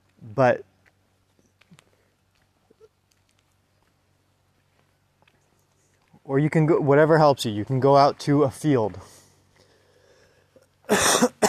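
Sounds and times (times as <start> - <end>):
speech: 0.3 - 0.7, 6.3 - 9.2
person coughing: 10.9 - 11.4.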